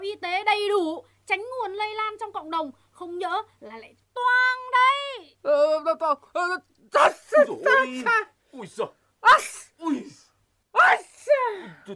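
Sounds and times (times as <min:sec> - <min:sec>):
speech: 0:00.0 - 0:10.2, 0:10.8 - 0:11.9
sharp breathy sneezes: 0:09.3 - 0:10.3.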